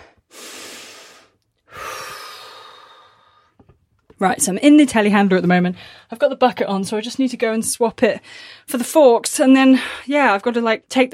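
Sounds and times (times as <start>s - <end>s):
deep nervous breathing: 0.0s - 3.6s
speech: 4.2s - 11.1s.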